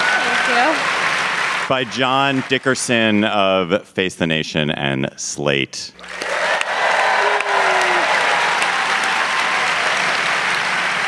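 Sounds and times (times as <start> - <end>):
large live theater audience applauding in San Francisco: 0.0 - 3.4, 6.0 - 11.0
speech: 1.7 - 6.4.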